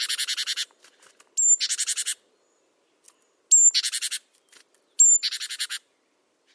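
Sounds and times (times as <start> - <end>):
great tit rasping pulsed chatter call: 0.0 - 0.7, 1.4 - 2.2, 3.5 - 4.3, 5.0 - 5.8.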